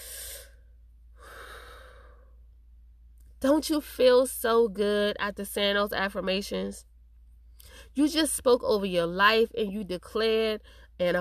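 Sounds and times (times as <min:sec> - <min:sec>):
deep breath: 0:00.0 - 0:02.4
speech: 0:03.4 - 0:06.9, 0:08.0 - 0:11.1.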